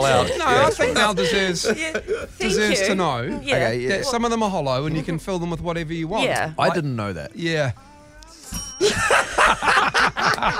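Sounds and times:
laughter: 0.0 - 2.8, 8.8 - 10.5
speech: 0.0 - 7.9, 8.8 - 10.5
bell struck repeatedly with a lingering metallic tone: 8.4 - 10.5.

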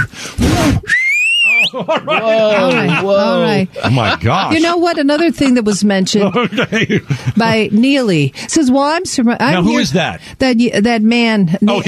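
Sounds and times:
loud piercing human mouth whistle sliding upward: 0.0 - 1.8
excited animated voices: 0.5 - 10.2, 11.6 - 11.8
laughter: 1.4 - 8.3
speech: 1.8 - 11.8.

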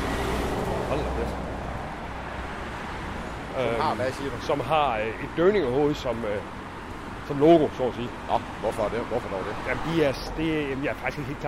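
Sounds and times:
heavy truck driving past with engine and road noise: 0.0 - 4.2
speech: 0.9 - 1.5, 3.6 - 6.6, 7.3 - 11.4.

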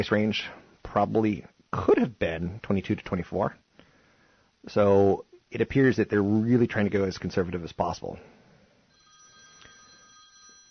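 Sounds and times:
speech: 0.0 - 3.6, 4.6 - 8.4
telephone ringing for an incoming call: 8.9 - 10.6.

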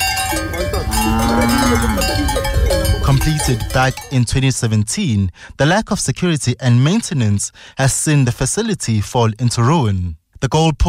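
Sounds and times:
cowbells clanking on grazing cattle on a derelict sports field: 0.0 - 4.7
long low drawn-out tone: 0.2 - 3.2
speech: 1.0 - 10.8.

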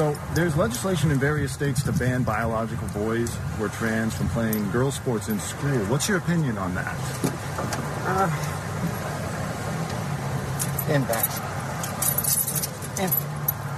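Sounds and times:
speech: 0.0 - 8.6, 10.9 - 11.5, 13.0 - 13.2
steady low vehicle rumble: 0.0 - 13.7
keys jangling: 10.6 - 13.6.

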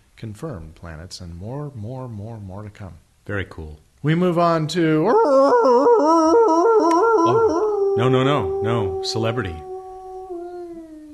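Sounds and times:
speech: 0.2 - 9.7
dog howling: 5.1 - 11.1.

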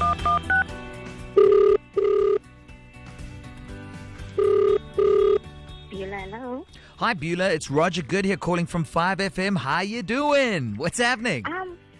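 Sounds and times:
dialing tones: 0.0 - 0.7, 1.4 - 2.4, 4.4 - 5.4
speech: 7.0 - 11.6.

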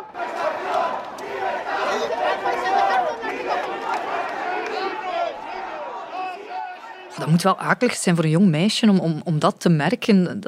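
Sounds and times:
large crowd of anti-monarchy street protesters shouting and chanting: 0.0 - 7.5
speech: 7.2 - 10.4.

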